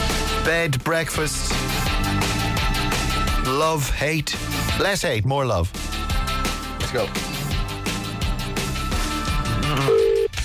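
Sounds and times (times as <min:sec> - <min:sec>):
busy music: 0:00.0 - 0:10.4
speech: 0:00.4 - 0:02.2, 0:03.5 - 0:05.9, 0:06.9 - 0:07.3
outgoing telephone call ringing tone: 0:09.6 - 0:10.4.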